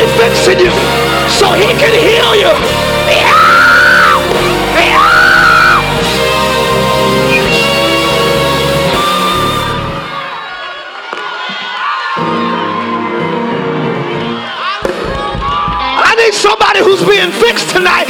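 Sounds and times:
large crowd shouting and yelling: 0.0s - 18.0s
speech: 1.4s - 2.8s, 16.8s - 18.0s
high whooping cries: 3.1s - 6.0s.

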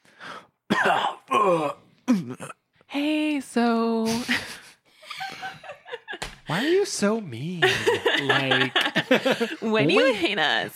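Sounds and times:
man coughing harshly while coming to: 0.7s - 2.6s
speech: 0.8s - 2.4s, 7.0s - 10.7s
laughter: 4.1s - 6.8s, 7.6s - 10.6s.

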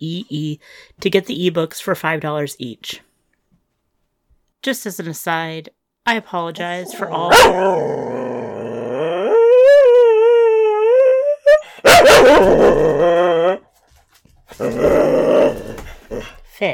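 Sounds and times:
speech: 0.0s - 3.1s, 4.6s - 8.4s, 12.3s - 13.2s
dog barking and growling: 6.6s - 10.1s, 11.4s - 13.7s, 14.5s - 16.5s
dog howling: 6.8s - 13.7s, 14.6s - 16.3s.

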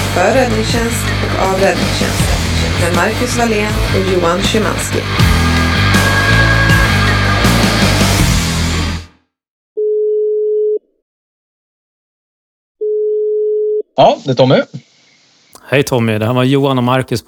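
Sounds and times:
loud music: 0.0s - 9.2s
speech: 0.2s - 5.5s, 14.0s - 14.9s, 15.7s - 17.2s
ringback tone of an outgoing phone call: 9.8s - 10.8s, 12.8s - 13.9s.

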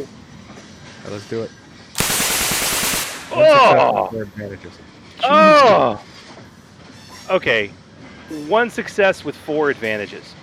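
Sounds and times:
speech: 0.0s - 0.2s, 1.0s - 1.6s, 3.3s - 6.1s, 7.3s - 10.4s
automatic gunfire sound effect: 2.0s - 3.4s
short voiced sound: 5.2s - 6.0s.

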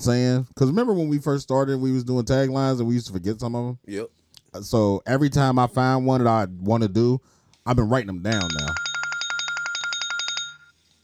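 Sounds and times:
speech: 0.0s - 8.8s
mobile phone ringtone of bright electronic beeps: 8.3s - 10.8s.

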